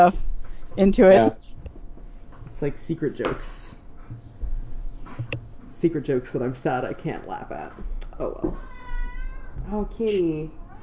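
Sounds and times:
speech: 0.0s - 1.5s, 2.6s - 4.2s, 5.3s - 8.7s, 9.6s - 10.6s
low hum: 0.0s - 10.8s
cat meowing: 8.5s - 9.7s, 10.5s - 10.8s.

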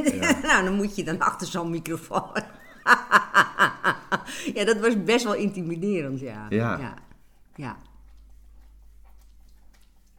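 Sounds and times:
speech: 0.0s - 3.4s, 4.3s - 7.0s, 7.6s - 7.9s
laughter: 0.0s - 4.6s
dog licking a person's hand: 4.8s - 10.1s.

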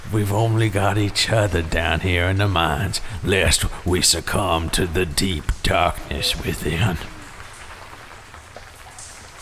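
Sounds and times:
rock slide of countless small impacts: 0.0s - 9.4s
speech: 0.1s - 7.2s.

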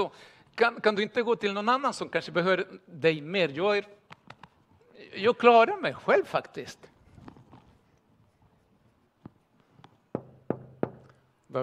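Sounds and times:
speech: 0.0s - 4.0s, 5.0s - 6.9s
knocking on a door: 10.1s - 11.1s.

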